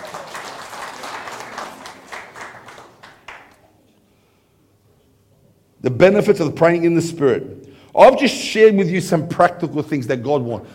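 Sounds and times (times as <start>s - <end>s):
crowd of people applauding: 0.0s - 3.7s
speech: 5.8s - 10.7s.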